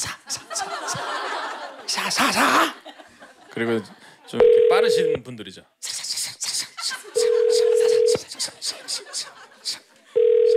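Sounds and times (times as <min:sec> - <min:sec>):
laughter from several people: 0:00.0 - 0:04.4, 0:06.5 - 0:10.2
speech: 0:02.2 - 0:02.8, 0:03.6 - 0:05.8
telephone ringback tone of an outgoing call: 0:04.4 - 0:05.2, 0:07.2 - 0:08.2, 0:10.2 - 0:10.5.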